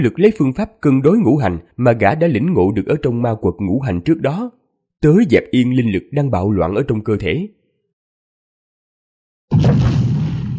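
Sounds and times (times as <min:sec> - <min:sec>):
speech: 0:00.0 - 0:07.6
underground explosion rumbling through a cavern: 0:09.5 - 0:10.5.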